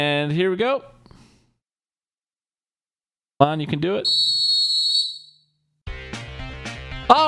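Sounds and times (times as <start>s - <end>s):
speech: 0.0s - 1.0s, 3.4s - 4.4s, 7.1s - 7.2s
loud shrill whistle blast: 4.1s - 5.5s.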